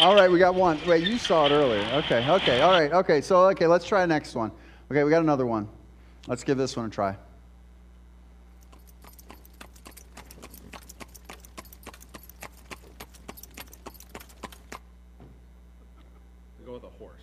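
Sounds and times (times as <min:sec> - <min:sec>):
speech: 0:00.0 - 0:07.3
faint jingle of horse harness: 0:08.6 - 0:14.8
horse and buggy hooves clip-clopping on a hard road: 0:08.6 - 0:14.8.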